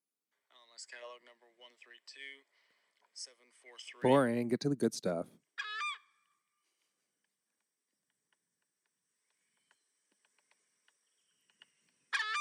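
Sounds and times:
speech: 0.8 - 2.6, 3.2 - 5.5
faint scattered clicks and chirps: 6.2 - 12.2
goose honking loudly and nasally: 12.2 - 12.3.

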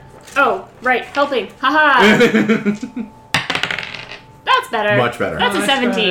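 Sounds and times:
speech: 0.4 - 3.2, 4.7 - 6.0
laughter: 2.0 - 3.1
dice clattering onto a hard table: 3.4 - 4.2.

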